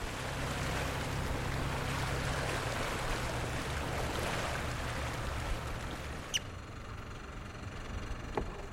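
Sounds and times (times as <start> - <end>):
water rushing past a boat: 0.0 - 6.5
boat engine droning while approaching a harbour: 0.0 - 8.7.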